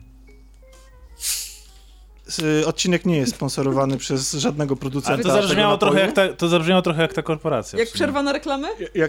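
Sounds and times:
cola can being cracked open with a fizzing hiss: 1.2 - 2.0
speech: 2.3 - 9.0.

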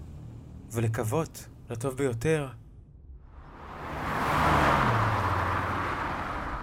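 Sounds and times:
speech: 0.7 - 2.6
car passing by: 3.3 - 6.6.

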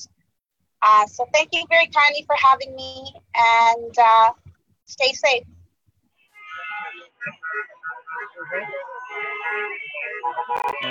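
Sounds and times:
speech: 0.8 - 5.5, 7.2 - 10.8
car horns honking at a protest: 6.3 - 10.8.

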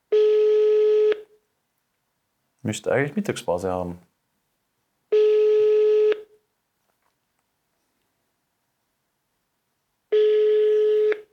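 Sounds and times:
ringing tone of an outgoing telephone call: 0.1 - 1.3, 5.1 - 6.3, 10.1 - 11.3
speech: 2.6 - 4.1.

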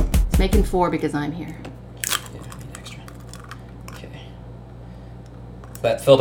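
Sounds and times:
speech: 0.4 - 1.7, 5.8 - 6.2
egg cracking open: 2.0 - 4.0
eggshell crunching: 2.0 - 4.1.

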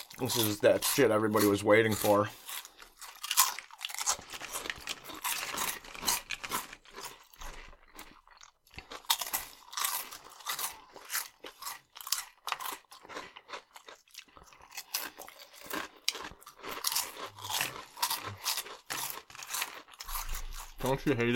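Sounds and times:
crunching and chewing of Flaming Hot Funyuns snack: 0.0 - 21.3
speech: 0.2 - 2.5, 21.0 - 21.3.

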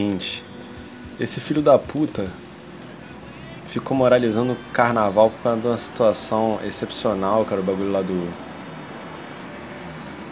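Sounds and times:
speech: 0.0 - 0.5, 1.2 - 2.5, 3.7 - 8.5
car passing by outside: 0.0 - 10.2.

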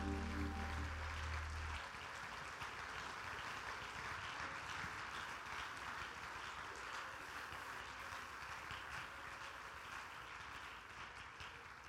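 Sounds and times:
low sustained chord: 0.0 - 1.8
large crowd clapping to give praise to God: 0.0 - 11.8.

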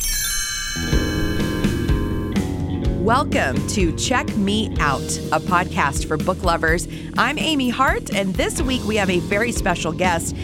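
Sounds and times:
bright chimes ringing as a page-turn cue: 0.0 - 2.4
speech: 3.1 - 10.4.

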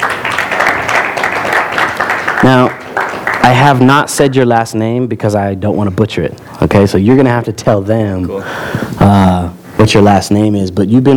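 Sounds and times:
sizeable crowd applauding: 0.0 - 3.9
speech: 2.4 - 2.8, 3.4 - 11.1.

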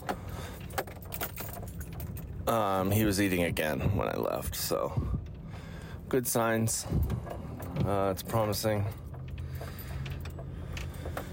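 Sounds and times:
keys jangling: 0.0 - 2.6, 7.0 - 11.3
speech: 2.5 - 5.2, 6.1 - 9.0.

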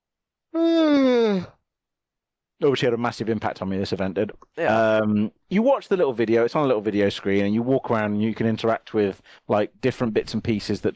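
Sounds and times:
speech: 0.5 - 1.5, 2.6 - 10.9
person yawning: 0.5 - 1.6.

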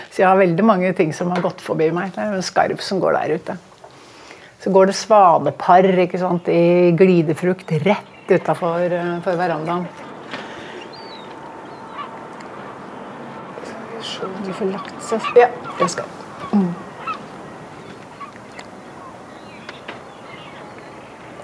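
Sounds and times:
steady outdoor noise: 0.0 - 21.4
speech: 0.2 - 3.7, 4.6 - 10.0, 14.6 - 16.7
flock of common eider ducks calling over open water: 8.1 - 21.4.

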